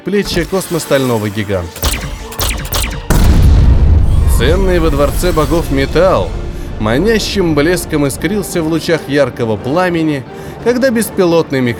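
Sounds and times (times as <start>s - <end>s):
speech: 0.0s - 1.9s, 4.4s - 11.7s
volley of sharp crackling energy-cannon shots: 0.3s - 8.8s
massive booming blast with roaring rumble: 1.8s - 9.0s.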